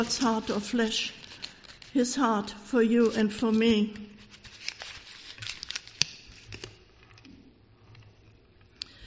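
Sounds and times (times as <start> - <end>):
speech: 0.0 - 1.2, 2.0 - 4.1
piece of paper being crumpled and crunched up: 0.0 - 7.0.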